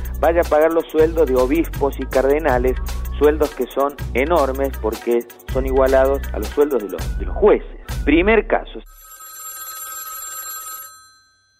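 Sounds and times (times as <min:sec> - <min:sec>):
speech: 0:00.2 - 0:09.0
telephone ringing for an incoming call: 0:08.9 - 0:11.5.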